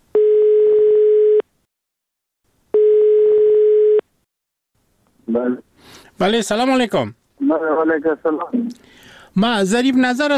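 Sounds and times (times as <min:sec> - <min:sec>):
telephone ringback tone of an outgoing call: 0:00.2 - 0:01.4, 0:02.8 - 0:04.0
speech: 0:05.3 - 0:10.3.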